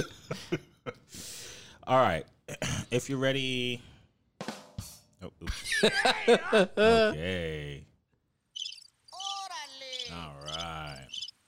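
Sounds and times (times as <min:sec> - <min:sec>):
speech: 0:00.0 - 0:00.6, 0:01.9 - 0:03.9, 0:05.2 - 0:07.9
laughter: 0:05.5 - 0:07.2
high buzzy cricket-like chirping: 0:08.6 - 0:11.3.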